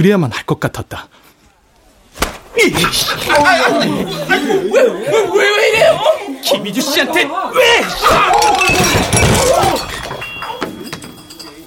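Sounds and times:
speech: 0.0 - 1.2, 2.6 - 9.9
laughter: 2.6 - 10.9
side-dish bowls crashing over on a table: 7.9 - 11.6.

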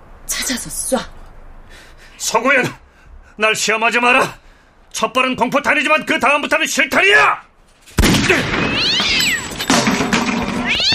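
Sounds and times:
speech: 0.5 - 1.2, 2.2 - 2.8, 3.4 - 8.6
cat meowing and caterwauling: 8.6 - 9.6, 10.5 - 10.9.

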